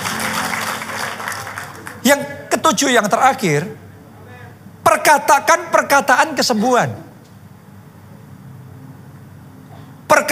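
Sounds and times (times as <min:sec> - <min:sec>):
audience applauding: 0:00.0 - 0:02.2
speech: 0:02.0 - 0:03.8, 0:05.0 - 0:07.1.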